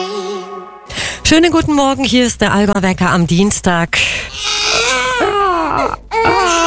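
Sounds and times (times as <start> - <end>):
speech: 1.3 - 4.5, 5.8 - 6.6
baby crying: 4.4 - 6.6.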